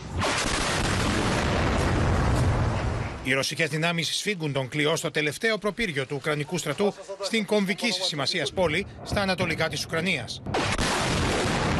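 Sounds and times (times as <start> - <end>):
explosions around the Azot chemical plant in Severodonetsk Ukraine: 0.0 - 3.2, 9.0 - 11.7
gunfire around the Azot chemical plant in Severodonetsk Ukraine: 0.1 - 2.4, 10.5 - 11.7
speech: 3.2 - 10.8.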